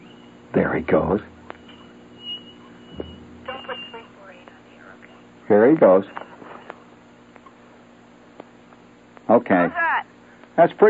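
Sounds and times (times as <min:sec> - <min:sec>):
guinea pig squeaking over the phone: 0:00.0 - 0:06.9
faint hum: 0:00.0 - 0:10.8
speech: 0:00.5 - 0:01.4, 0:05.5 - 0:06.3, 0:09.3 - 0:10.8
brief thump: 0:02.9 - 0:03.5.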